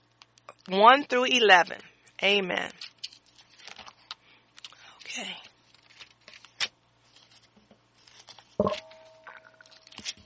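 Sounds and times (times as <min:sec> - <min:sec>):
speech: 0:00.7 - 0:03.0, 0:05.2 - 0:05.4
Bible pages being turned: 0:02.8 - 0:04.7, 0:05.5 - 0:08.6, 0:09.8 - 0:10.2.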